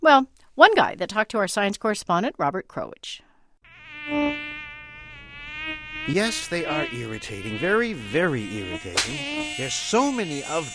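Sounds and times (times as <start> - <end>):
speech: 0.0 - 3.3, 4.1 - 4.5, 6.1 - 10.7
mosquito buzzing with a thin high whine: 3.6 - 10.7.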